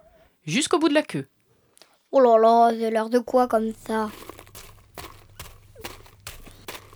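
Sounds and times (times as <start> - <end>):
speech: 0.4 - 1.4, 2.1 - 4.2
footsteps scuffing at a steady pace: 3.2 - 6.9.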